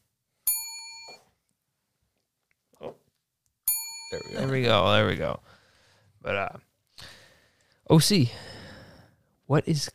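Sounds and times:
bright ringing bell being struck: 0.5 - 1.2, 3.7 - 4.8
speech: 4.1 - 5.6, 6.2 - 6.7, 7.9 - 8.5, 9.5 - 9.9.

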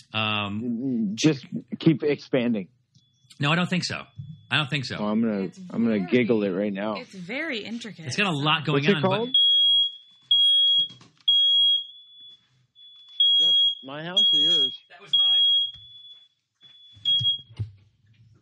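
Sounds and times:
laughter: 0.0 - 2.6, 3.4 - 9.3, 13.9 - 14.7
speech: 0.1 - 2.8, 3.4 - 9.5, 13.9 - 15.3
smoke detector alarm beeping: 8.0 - 17.5.

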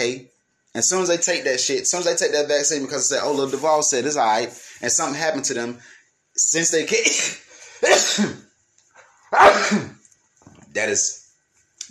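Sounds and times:
speech: 0.1 - 8.4, 9.3 - 10.0, 10.8 - 11.2
person sneezing from allergies: 7.0 - 8.4, 9.3 - 10.0.

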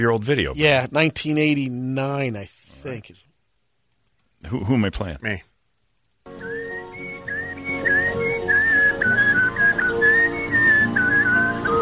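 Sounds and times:
speech: 0.0 - 3.2, 4.4 - 5.5
man whistling a wavering melody on an old recording: 6.4 - 11.7.

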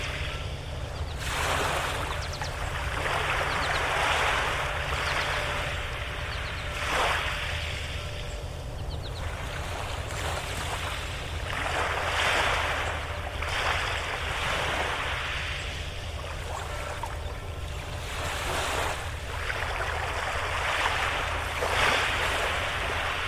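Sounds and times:
steady low rumble like an engine or boat: 0.0 - 23.2
water sloshing against a dock: 0.0 - 23.2.

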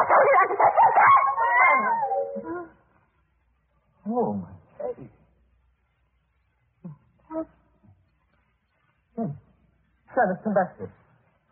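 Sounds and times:
cat yowling in a wavering whiny cry: 0.1 - 2.5
speech: 10.3 - 11.0.

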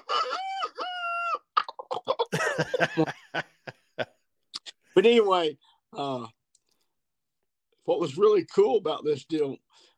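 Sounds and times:
man imitating a rooster crowing: 0.0 - 1.5
man making choppy clucking vocal sounds: 1.6 - 3.2
laughter: 2.2 - 4.2
speech: 2.6 - 3.6, 5.0 - 6.4, 7.9 - 9.9.

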